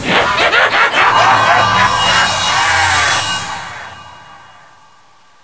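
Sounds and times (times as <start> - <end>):
person laughing: 0.1 - 4.3.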